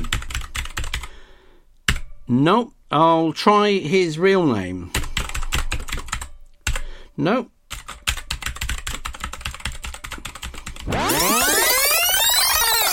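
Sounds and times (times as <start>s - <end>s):
rapid typing on a computer keyboard: 0.0s - 1.1s, 4.9s - 6.9s, 7.7s - 10.9s
speech: 2.3s - 5.0s, 7.2s - 7.5s
loud rising electronic sweep: 10.9s - 12.9s.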